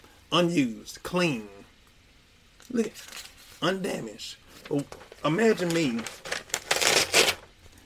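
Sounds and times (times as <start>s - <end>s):
speech: 0.3s - 1.6s, 2.7s - 6.3s
new paper sheet ripped from a spiral notebook: 4.6s - 7.5s.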